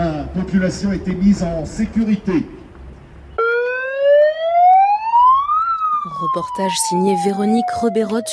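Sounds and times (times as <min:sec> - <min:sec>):
speech: 0:00.3 - 0:02.6, 0:06.2 - 0:08.3
industrial alert siren wailing: 0:03.4 - 0:08.3.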